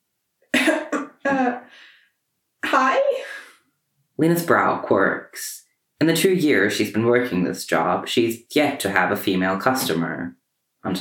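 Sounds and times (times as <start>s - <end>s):
woman giving an awkward hoarse cough: 0.6s - 1.6s
speech: 1.3s - 1.9s, 2.7s - 3.3s, 4.2s - 10.9s.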